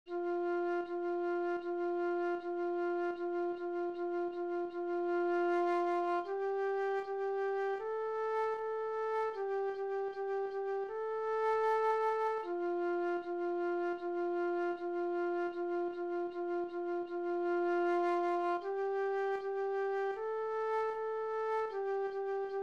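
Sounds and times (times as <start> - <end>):
slow flute piece: 0.1 - 22.6.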